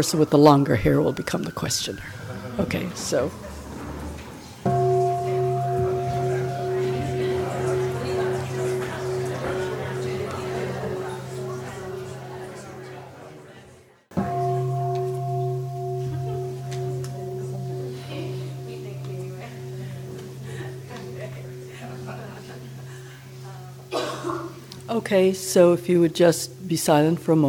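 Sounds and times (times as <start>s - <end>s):
speech: 0.0s - 3.5s, 25.1s - 27.4s
faint noise: 0.0s - 27.4s
meditation bell struck and ringing: 4.7s - 13.5s, 14.1s - 26.0s.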